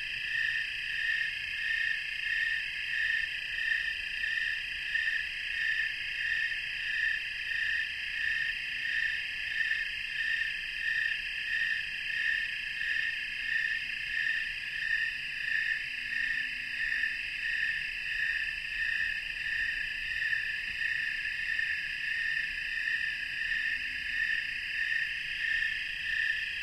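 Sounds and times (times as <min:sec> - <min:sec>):
snowy tree cricket chorus in North America: 0:00.0 - 0:26.6.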